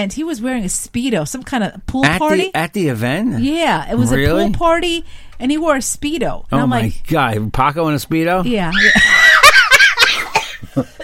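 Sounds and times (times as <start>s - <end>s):
speech: 0.0s - 9.2s, 10.8s - 11.0s
breathy sounds: 5.0s - 5.4s
laughter: 8.8s - 11.0s
person coughing: 10.0s - 11.0s.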